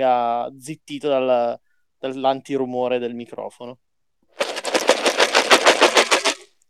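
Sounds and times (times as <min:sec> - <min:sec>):
speech: 0:00.0 - 0:03.8
box of wooden board-game meeples being shaken: 0:04.4 - 0:06.5.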